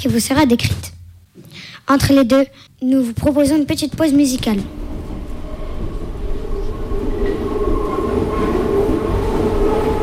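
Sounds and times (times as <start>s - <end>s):
speech: 0.0s - 4.8s
elevated metro train rolling along rails heard from inside the car: 4.0s - 10.0s
faint metallic whines of elevated metro train: 4.7s - 10.0s.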